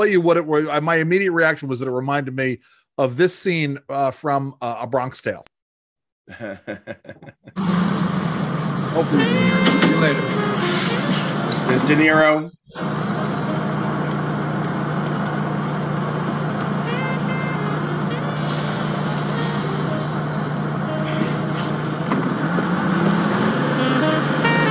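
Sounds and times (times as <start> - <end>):
speech: 0.0 - 5.5, 6.3 - 8.3, 9.0 - 10.6, 11.7 - 13.2
laughter: 6.3 - 7.6
bus air brakes hissing: 7.6 - 12.0, 18.3 - 23.5
large bus engine rumbling and idling: 7.6 - 12.1, 12.8 - 24.6
road noise: 7.6 - 12.1, 12.8 - 24.6.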